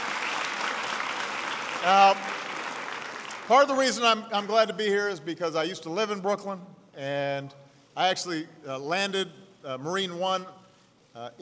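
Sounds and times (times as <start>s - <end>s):
audience of students at a school applauding: 0.0s - 3.6s
speech: 1.8s - 2.3s, 3.5s - 10.6s, 11.2s - 11.3s.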